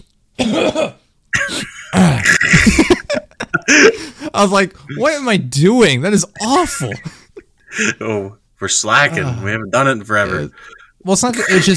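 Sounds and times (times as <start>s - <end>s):
man vocally imitating a rasping hacking cough and throat-clearing: 0.4s - 3.0s, 11.3s - 11.7s
speech: 4.4s - 11.7s.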